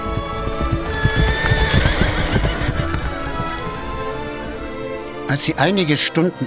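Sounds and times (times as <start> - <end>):
horse whinnying: 0.0 - 4.8
horse hooves clip-clopping while riding away: 0.0 - 5.5
speech: 5.3 - 6.4.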